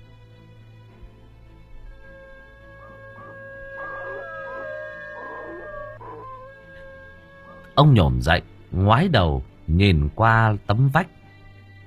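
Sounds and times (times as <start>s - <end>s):
dogs whimpering yips: 2.0s - 7.8s
dogs howling in the night: 2.0s - 8.1s
speech: 7.8s - 11.2s.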